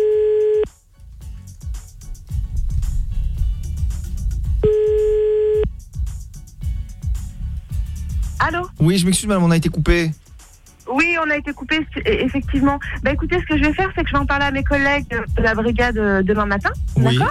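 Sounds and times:
telephone tone while a call is placed again: 0.0 - 0.7, 4.6 - 5.7
low rumbling noise: 1.1 - 17.2
speech: 8.8 - 10.2, 11.2 - 17.2.

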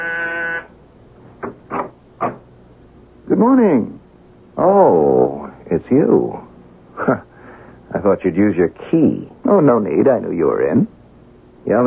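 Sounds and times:
door buzzer: 0.0 - 0.7
speech: 3.4 - 4.0, 5.9 - 6.4, 7.1 - 7.3, 8.0 - 11.0, 11.6 - 11.8.

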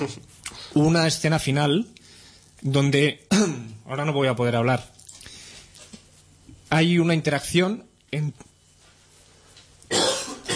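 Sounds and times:
speech: 0.0 - 2.0, 2.6 - 5.0, 6.7 - 8.5
person with a persistent cough coughing harshly: 3.3 - 3.7, 9.9 - 10.5.

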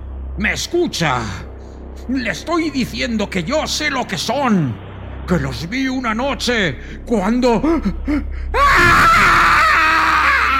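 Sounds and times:
speech: 0.4 - 1.5, 2.1 - 9.3
old man's scream of horror: 8.6 - 10.5.

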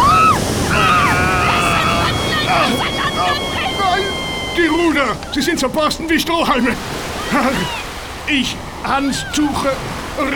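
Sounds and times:
high whistling tones: 0.0 - 6.1
laughter: 0.0 - 10.3
wave crashing over a ship in a storm at sea: 0.0 - 10.3
speech: 5.0 - 10.3.

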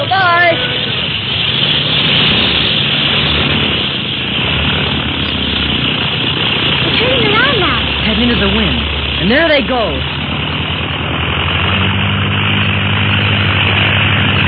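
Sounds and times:
small propeller plane engine starting up and roaring: 0.0 - 14.4
speech: 9.6 - 10.1.

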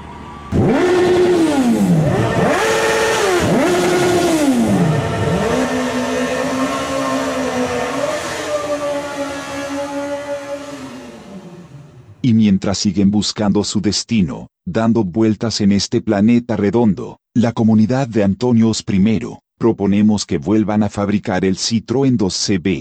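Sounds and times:
motorcycle engine idling: 0.0 - 8.2
motorcycles revving: 0.0 - 12.2
speech: 12.7 - 22.7.

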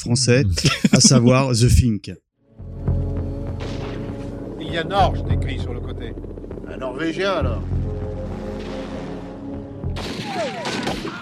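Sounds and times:
speech: 0.0 - 2.2, 4.7 - 7.8, 10.0 - 11.2
laughter: 0.4 - 1.8
low-flying aircraft engine humming: 2.8 - 9.9
burst of gunfire from a low-flying aircraft shooting at a dog: 10.0 - 11.2.

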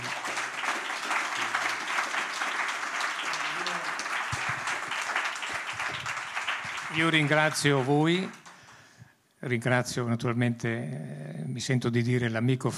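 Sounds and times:
audience applause at an event: 0.0 - 8.8
speech: 6.9 - 8.4, 9.4 - 12.7.

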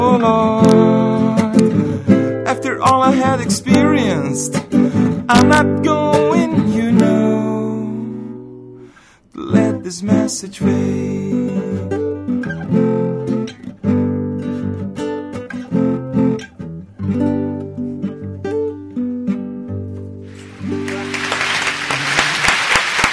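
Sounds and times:
sustained tonal music: 0.0 - 23.1
speech: 2.8 - 6.2, 9.9 - 11.9
applause at the close of a song: 20.3 - 23.1.

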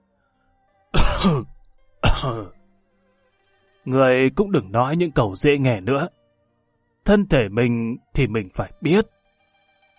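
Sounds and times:
ageing man coughing lightly: 1.0 - 2.5
speech: 1.2 - 1.5, 2.2 - 2.6, 3.9 - 6.2, 7.0 - 9.2.

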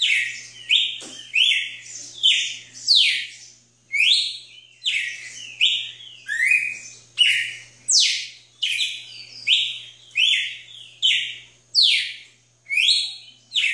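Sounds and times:
Red-cowled cardinal song of repeated bright whistled slurs: 0.0 - 13.7
faint hum: 0.0 - 13.7.

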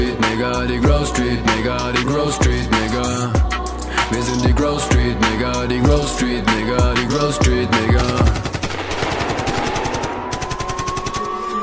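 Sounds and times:
speech: 0.4 - 3.5, 4.1 - 8.5
machine-gun fire sound effect in a German rap track: 7.9 - 11.4.

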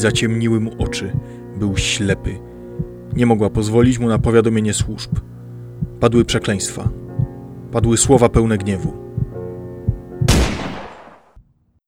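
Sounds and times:
speech: 0.0 - 2.5, 3.1 - 5.4, 6.0 - 7.0, 7.7 - 9.1
soft music: 0.0 - 11.0
loud gunshot: 10.3 - 11.4.

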